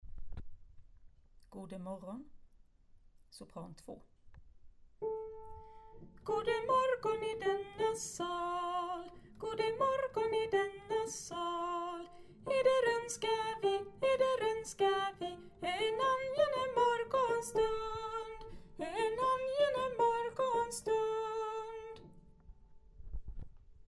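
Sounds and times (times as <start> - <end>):
soprano singing: 5.0 - 22.3.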